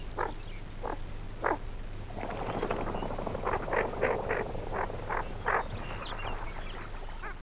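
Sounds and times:
greater scaup calling: 0.2s - 1.7s, 2.5s - 7.4s.

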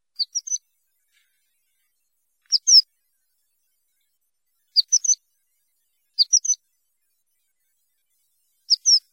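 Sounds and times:
horned lark voice: 0.2s - 0.6s, 2.5s - 2.8s, 4.8s - 5.2s, 6.2s - 6.6s.

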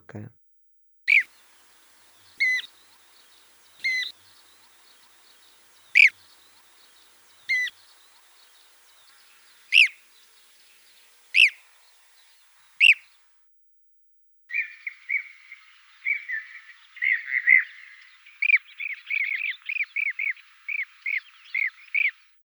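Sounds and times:
blue-cheeked bee-eater calling: 1.1s - 13.3s, 14.5s - 22.3s.

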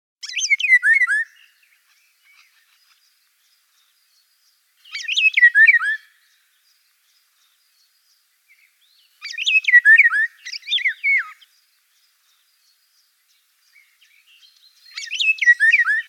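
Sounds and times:
golden oriole voice: 0.2s - 16.0s.

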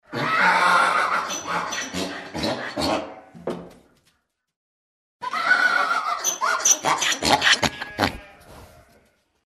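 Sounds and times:
donkey braying: 0.1s - 3.4s, 5.2s - 9.1s.

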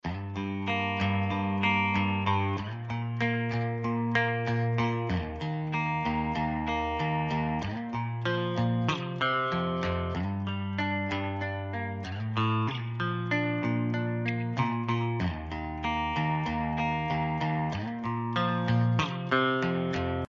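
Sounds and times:
guitar: 0.0s - 20.2s.

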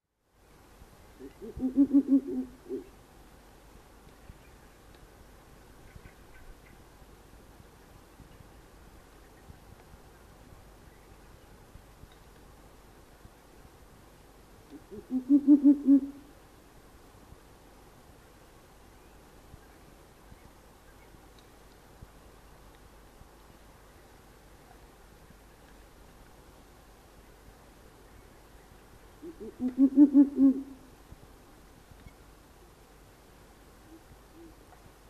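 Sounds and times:
Ural owl calling: 1.2s - 2.9s, 14.7s - 16.2s, 29.2s - 30.9s, 33.8s - 34.6s.

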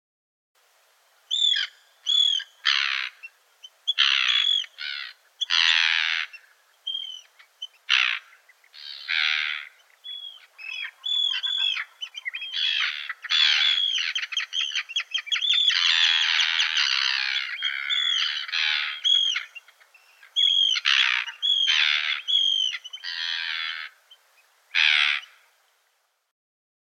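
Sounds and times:
Arctic tern calling: 1.3s - 25.5s.

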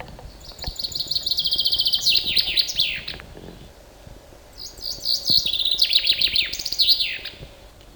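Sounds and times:
chaffinch calling: 0.0s - 3.3s, 4.5s - 7.4s.

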